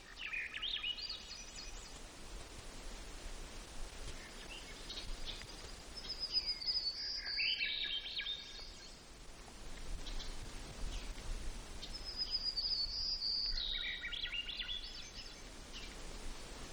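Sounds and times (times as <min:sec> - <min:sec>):
white-crowned sparrow song in Gates of the Arctic, Alaska: 0:00.0 - 0:02.0, 0:04.1 - 0:09.1, 0:11.8 - 0:16.4
background hiss: 0:00.0 - 0:16.7.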